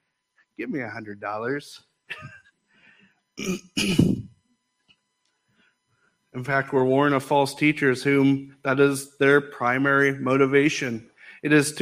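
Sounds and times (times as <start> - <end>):
speech: 0.6 - 2.4, 3.4 - 4.3, 6.4 - 11.8
short rough coughs: 2.1 - 2.4, 3.4 - 4.3
quiet throaty sound: 3.4 - 4.3.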